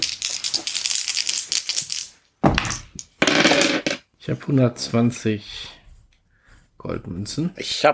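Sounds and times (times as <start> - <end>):
three six-sided dice rattling and clattering in a tabletop role-playing game: 0.0 - 4.0
speech: 4.3 - 5.8, 6.8 - 7.9.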